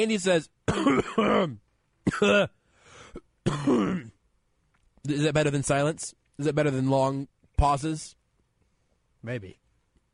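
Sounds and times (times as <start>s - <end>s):
speech: 0.0s - 4.1s, 5.0s - 8.2s, 9.2s - 9.6s
person clearing throat: 0.7s - 4.2s
person coughing: 0.7s - 4.2s
raspy breath: 2.6s - 3.2s.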